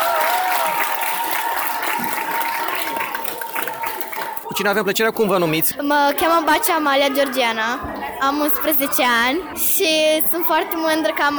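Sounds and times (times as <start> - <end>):
crowd clapping: 0.0 - 5.6
speech: 4.6 - 11.3.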